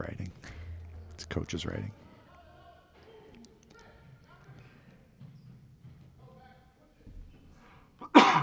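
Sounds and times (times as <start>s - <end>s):
quiet breathing: 0.3s - 1.1s, 7.4s - 8.0s
speech: 1.3s - 2.0s
person coughing: 8.0s - 8.4s.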